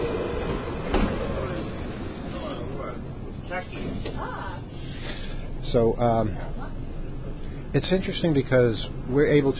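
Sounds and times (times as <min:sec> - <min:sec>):
train rolling into a station: 0:00.0 - 0:09.5
speech: 0:05.7 - 0:06.6, 0:07.7 - 0:09.5.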